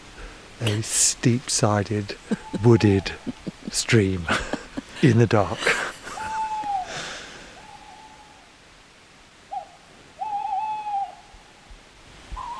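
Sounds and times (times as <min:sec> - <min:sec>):
speech: 0:00.6 - 0:06.0
laughter: 0:02.1 - 0:07.1
tawny owls hooting at night beside a wooded stream in Ashdown Forest: 0:02.2 - 0:03.5, 0:06.0 - 0:08.5, 0:09.5 - 0:11.4, 0:12.3 - 0:12.5.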